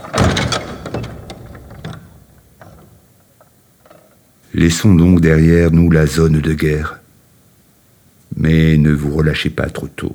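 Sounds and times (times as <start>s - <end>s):
heavy thump of wooden door being pushed open: 0.0s - 3.1s
dry creaks and clicks from wooden door hinges: 0.0s - 4.2s
speech: 4.6s - 7.0s, 8.4s - 10.1s.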